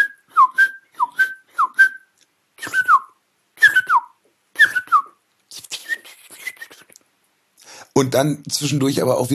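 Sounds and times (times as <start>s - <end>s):
person whistling an imitation of song thrush notes: 0.0s - 6.9s
speech: 8.0s - 9.3s.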